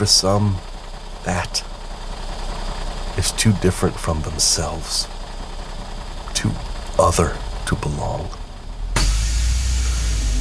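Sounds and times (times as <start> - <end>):
speech: 0.0 - 1.7, 3.2 - 5.1, 6.4 - 8.4
bus engine rumbling as the bus pulls away: 0.0 - 10.3.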